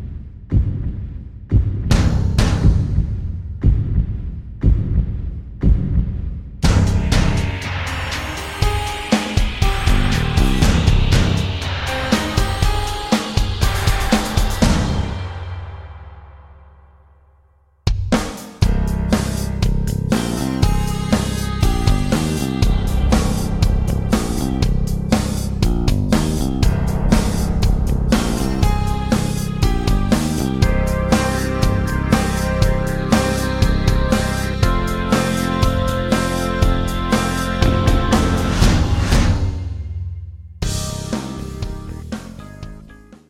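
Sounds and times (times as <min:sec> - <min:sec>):
backing track in C minor without guitar or backing vocals: 0:00.5 - 0:16.6, 0:17.9 - 0:43.2.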